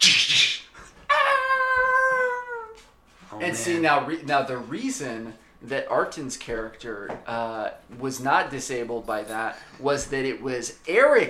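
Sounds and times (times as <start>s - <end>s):
dog howling: 1.1s - 2.8s
speech: 3.4s - 11.2s.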